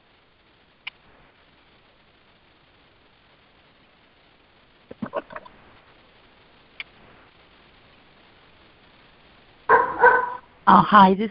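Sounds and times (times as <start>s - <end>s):
dog barking at the dog next door: 9.7s - 10.5s
speech: 10.7s - 11.2s.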